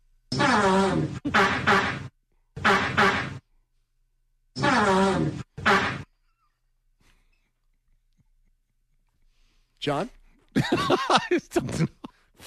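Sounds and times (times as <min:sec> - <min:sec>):
buzzy fart sounds with shifting pitch played as a song: 0:00.3 - 0:03.4, 0:04.6 - 0:06.1
speech: 0:00.5 - 0:01.8, 0:09.8 - 0:12.4
laughter: 0:10.5 - 0:12.3.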